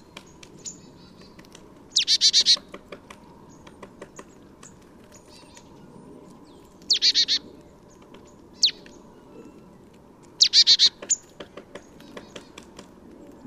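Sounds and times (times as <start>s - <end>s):
marsh tit Poecile palustris calling in high chattering bursts: 0.6s - 2.7s, 6.9s - 7.4s, 8.6s - 9.0s, 10.4s - 12.6s.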